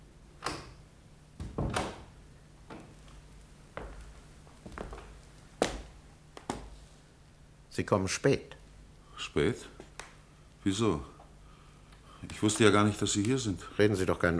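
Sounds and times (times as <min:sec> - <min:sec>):
hiss: 0:00.0 - 0:14.3
wooden door closing: 0:01.4 - 0:03.0
speech: 0:07.8 - 0:08.6, 0:09.2 - 0:09.8, 0:10.6 - 0:11.1, 0:12.2 - 0:14.3.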